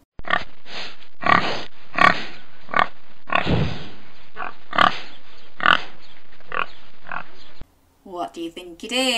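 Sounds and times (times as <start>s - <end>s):
pig oinking and grunting: 1.2s - 3.8s, 4.4s - 5.9s
speech: 8.4s - 9.1s.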